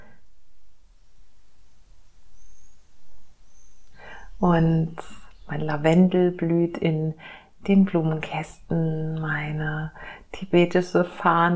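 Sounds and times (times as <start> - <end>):
hiss: 0.0 - 11.5
birds chirping outside a large window: 2.2 - 5.9
speech: 4.4 - 11.5.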